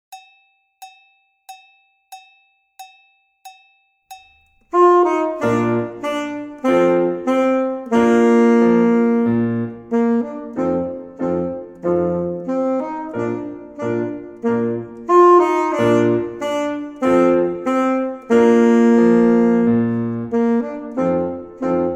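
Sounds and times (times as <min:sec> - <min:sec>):
saxophone playing: 0:04.7 - 0:21.9.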